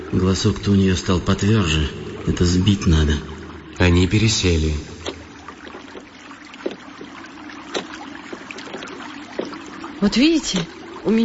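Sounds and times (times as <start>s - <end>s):
steady wash of moving water: 0.0s - 11.2s
speech: 0.1s - 4.9s, 10.0s - 11.2s
oars splashing in water as a woman rows a boat: 3.8s - 11.2s.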